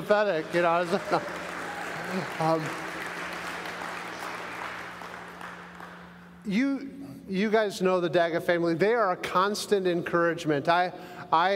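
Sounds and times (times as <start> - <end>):
crowd clapping: 0.0 - 6.4
speech: 0.1 - 1.4, 2.1 - 2.8, 6.4 - 11.5
laughter: 0.4 - 3.1.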